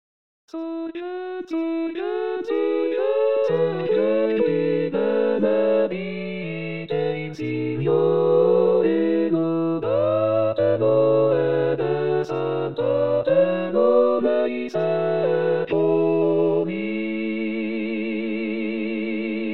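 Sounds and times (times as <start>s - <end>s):
choir singing: 0.6s - 19.5s.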